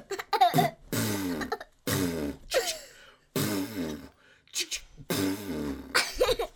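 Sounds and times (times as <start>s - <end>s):
fart noises: 0.5s - 2.7s, 3.4s - 4.2s, 5.0s - 6.0s.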